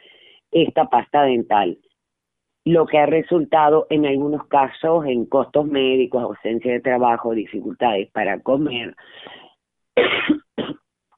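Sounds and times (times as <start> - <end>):
faint breathy sounds: 0.0 - 0.5
speech: 0.5 - 1.9, 2.6 - 9.4
person coughing: 10.0 - 10.8.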